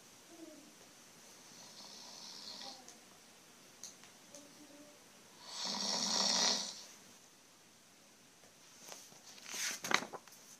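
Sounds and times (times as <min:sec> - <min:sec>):
loud raspy snoring: 0:01.6 - 0:02.8, 0:05.4 - 0:06.8.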